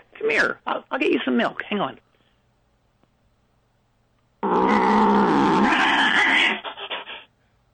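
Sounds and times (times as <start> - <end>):
speech: 0.2 - 2.0
alley cat letting out a ferocious roar: 4.4 - 6.6.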